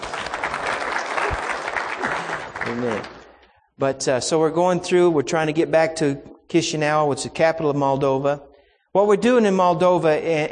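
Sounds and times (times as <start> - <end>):
audience applause: 0.0 - 3.4
speech: 2.7 - 3.2, 3.8 - 10.4.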